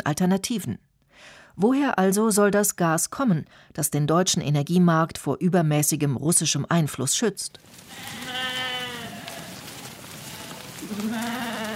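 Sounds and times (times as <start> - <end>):
speech: 0.0 - 8.6
large flock of sheep bleating following a shepherd across a forest clearing: 7.7 - 11.7.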